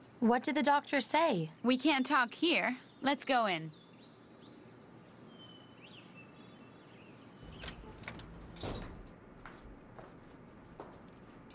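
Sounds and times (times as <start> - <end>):
speech: 0.2 - 3.8
main door scraping open: 7.4 - 9.9
keys clicking and jingling at the lock of a main door: 7.6 - 11.5.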